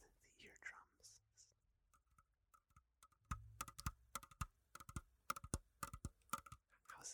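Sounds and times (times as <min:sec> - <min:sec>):
soft whispering: 0:00.0 - 0:01.6, 0:06.7 - 0:07.1
light quick tapping on a kitchen counter: 0:03.3 - 0:06.6.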